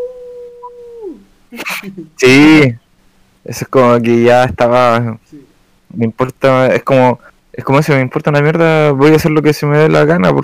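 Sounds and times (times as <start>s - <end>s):
person imitating a howl: 0.0s - 1.2s
speech: 1.5s - 2.8s, 3.4s - 10.4s.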